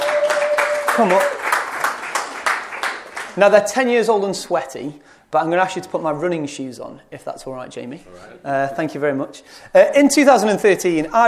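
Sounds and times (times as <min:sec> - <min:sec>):
audience applause: 0:00.0 - 0:03.4
speech: 0:01.0 - 0:01.4, 0:03.4 - 0:11.2.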